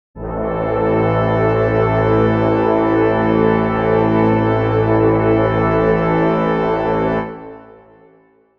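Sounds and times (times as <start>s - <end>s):
brass chord in A minor: 0.2s - 8.5s.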